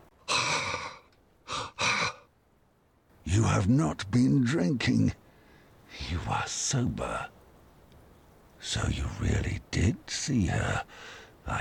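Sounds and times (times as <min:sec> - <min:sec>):
person breathing deeply: 0:00.3 - 0:02.2, 0:10.9 - 0:11.4
speech: 0:03.3 - 0:05.2, 0:05.9 - 0:07.4, 0:08.6 - 0:11.5.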